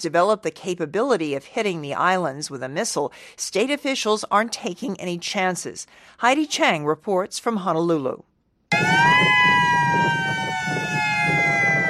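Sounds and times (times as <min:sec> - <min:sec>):
speech: 0:00.0 - 0:08.9
attack warning siren wailing: 0:08.7 - 0:11.8.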